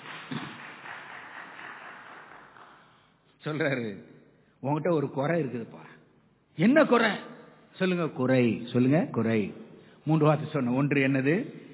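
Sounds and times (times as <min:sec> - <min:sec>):
crowd clapping for the Lord: 0:00.0 - 0:03.2
speech: 0:03.4 - 0:05.9, 0:06.6 - 0:11.6.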